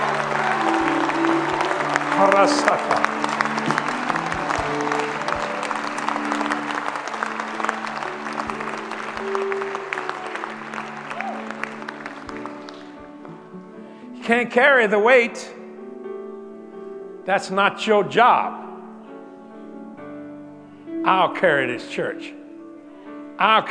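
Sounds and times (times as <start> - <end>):
people cheering: 0.0 - 12.8
audience applause, room full of people clapping: 0.0 - 13.4
speech: 2.2 - 3.1, 14.3 - 15.5, 17.3 - 18.7, 21.0 - 22.4, 23.4 - 23.6.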